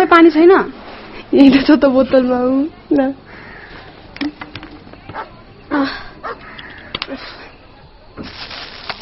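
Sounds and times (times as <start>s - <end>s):
speech: 0.1s - 3.2s, 5.7s - 6.1s, 7.1s - 7.4s
dog barking: 5.1s - 5.3s, 6.2s - 6.4s.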